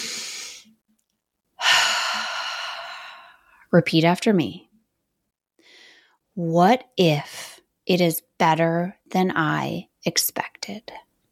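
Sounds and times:
deep breath: 0.0 - 0.7, 1.6 - 3.6, 5.6 - 6.2
speech: 3.7 - 4.7, 6.4 - 11.0.

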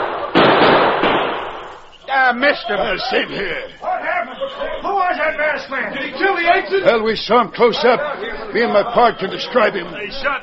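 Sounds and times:
gunshot in an old-time radio drama: 0.0 - 1.9
laughter: 2.1 - 10.4
speech: 2.2 - 3.9, 4.5 - 10.4.

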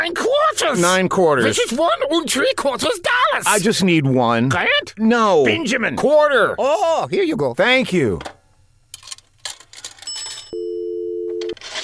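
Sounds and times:
speech: 0.0 - 8.4
telephone dialing: 10.0 - 11.6.

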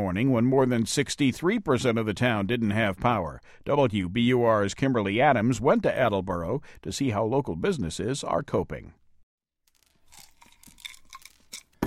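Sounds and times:
speech: 0.0 - 9.0
pills crushed in a glass mortar and pestle with grinding and scraping: 9.7 - 11.8.

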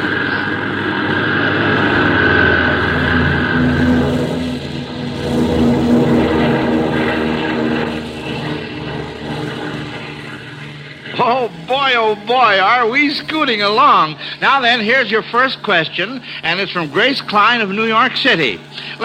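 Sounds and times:
airplane engine roaring through a takeoff: 0.0 - 19.0
speech: 12.1 - 19.0.

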